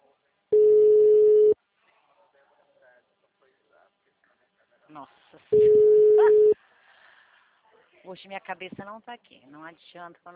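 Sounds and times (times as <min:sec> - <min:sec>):
telephone ringback tone of an unanswered call: 0:00.6 - 0:01.6, 0:05.6 - 0:06.6
speech: 0:05.0 - 0:06.4, 0:08.1 - 0:10.3.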